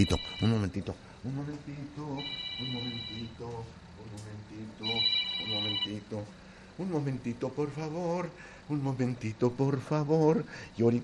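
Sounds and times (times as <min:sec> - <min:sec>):
telephone ringing with incoming call: 0:00.0 - 0:00.8, 0:02.0 - 0:03.6, 0:04.8 - 0:06.2
speech: 0:00.0 - 0:11.0.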